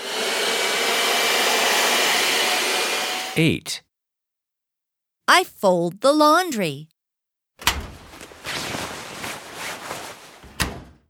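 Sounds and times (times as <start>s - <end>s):
vacuum cleaner vacuuming the floor: 0.0s - 3.4s
speech: 3.4s - 3.8s, 5.3s - 6.9s.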